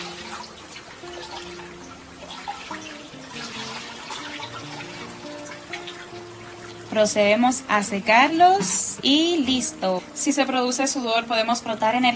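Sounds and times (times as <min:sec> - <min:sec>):
cold water poured over feet: 0:00.0 - 0:07.4
soft music: 0:00.0 - 0:12.1
speech: 0:06.9 - 0:12.1.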